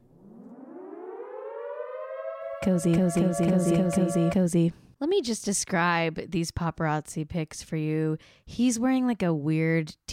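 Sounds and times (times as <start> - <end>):
siren alarm sound effect winding up to a rising wail: 0.0 - 4.6
speech: 2.6 - 10.1.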